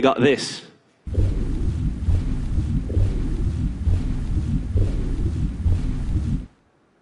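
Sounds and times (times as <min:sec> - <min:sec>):
speech: 0:00.0 - 0:01.2
heavy continuous low rumble of a submarine interior: 0:01.1 - 0:06.6.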